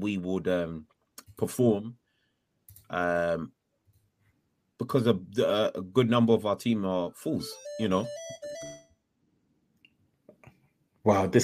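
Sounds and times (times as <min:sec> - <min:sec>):
speech: 0:00.0 - 0:02.0, 0:02.9 - 0:03.6, 0:04.8 - 0:08.8, 0:11.0 - 0:11.4
trap phone electronic ring tone: 0:07.4 - 0:08.9.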